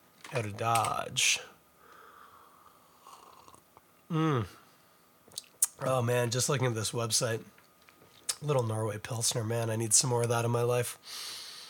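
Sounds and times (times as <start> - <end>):
speech: 0.3 - 1.5, 4.1 - 4.6, 5.8 - 7.6, 8.4 - 11.4
person slurping and swallowing a drink: 3.0 - 3.7
satisfied vocal sigh: 4.1 - 4.6.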